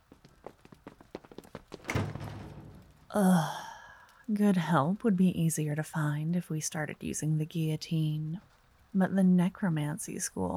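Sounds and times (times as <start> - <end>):
light footsteps: 0.0 - 3.2
door swinging shut with a heavy thud: 1.8 - 3.1
speech: 3.1 - 3.6, 4.3 - 10.5.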